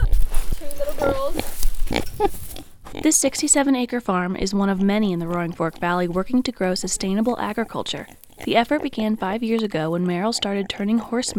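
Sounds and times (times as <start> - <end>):
farm noise: 0.0 - 11.3
two young piglets oinking and squealing on a farm: 0.0 - 11.3
speech: 2.2 - 2.4, 3.1 - 11.3.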